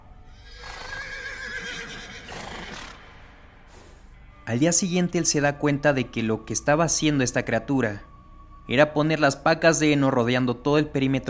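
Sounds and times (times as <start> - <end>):
horses whinnying and neighing in terror: 0.4 - 3.4
speech: 4.5 - 8.1, 8.7 - 11.2.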